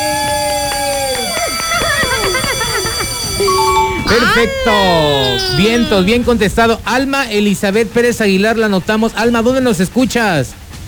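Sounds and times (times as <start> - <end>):
telephone ringing with electronic ringtone during a live on-air call: 0.0 - 6.4
steady loud bed of sound: 0.0 - 8.0
speech: 4.2 - 10.6.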